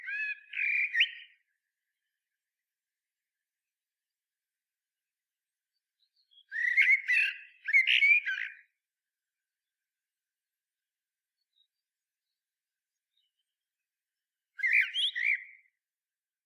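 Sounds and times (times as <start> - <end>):
Common blackbird Turdus merula singing: 0.0 - 1.4, 6.1 - 8.7, 14.6 - 15.7.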